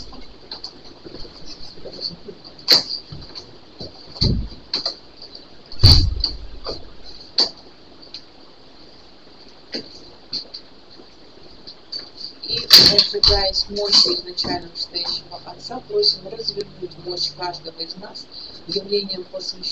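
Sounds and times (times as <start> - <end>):
steady high-pitched whine: 0.0 - 19.6
door shutting with a solid low thump: 4.2 - 4.6, 5.8 - 6.8
speech: 13.3 - 19.6.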